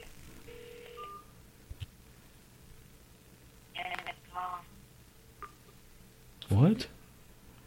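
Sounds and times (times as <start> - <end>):
low steady line hiss and hum: 0.0 - 7.6
telephone keypad dialing tones: 0.5 - 1.3
speech: 6.5 - 7.0.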